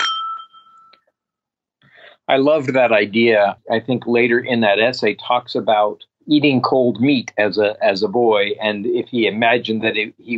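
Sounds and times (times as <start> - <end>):
glasses clinking in a toast: 0.0 - 1.0
speech: 2.3 - 10.3.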